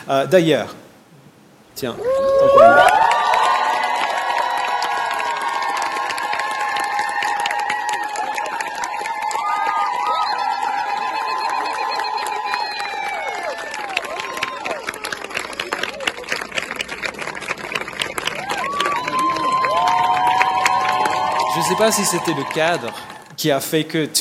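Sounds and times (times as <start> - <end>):
speech: 0.0 - 0.8, 1.8 - 3.0, 21.8 - 24.1
large crowd cheering and shouting: 1.9 - 16.2, 18.2 - 23.3
high whoops: 2.0 - 16.0, 18.3 - 23.3.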